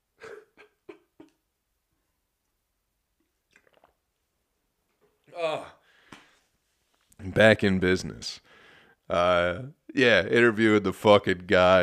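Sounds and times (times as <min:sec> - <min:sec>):
sipping and swallowing water: 0:03.2 - 0:04.2
wet mouth sounds: 0:03.2 - 0:04.2
breathing: 0:05.8 - 0:06.6, 0:08.4 - 0:09.1
speech: 0:07.4 - 0:08.5, 0:09.1 - 0:11.8.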